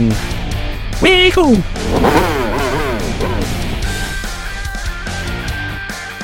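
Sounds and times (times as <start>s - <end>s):
speech: 0.0s - 0.3s, 1.0s - 2.4s
hover bike engines revving during a chase through desert dunes: 1.6s - 6.0s.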